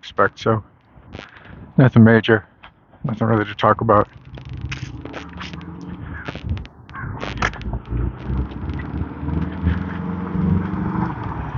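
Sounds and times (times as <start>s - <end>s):
speech: 0.0s - 1.2s, 1.8s - 4.2s
Volkswagen bus engine rumbling while driving past: 3.0s - 11.5s
wind buffeting the microphone: 3.0s - 11.5s.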